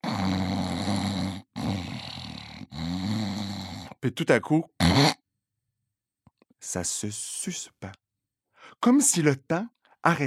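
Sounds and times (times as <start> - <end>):
voice imitating loud rough irregular snoring: 0.0 - 4.0, 4.8 - 5.2
speech: 4.0 - 5.2, 6.6 - 8.0, 8.7 - 10.2.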